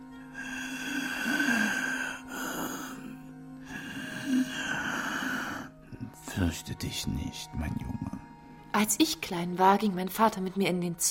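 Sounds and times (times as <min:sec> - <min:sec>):
voice performing loud heavy rasping breathing of a grandfather: 0:00.3 - 0:06.2
speech: 0:06.4 - 0:08.1, 0:08.8 - 0:11.0.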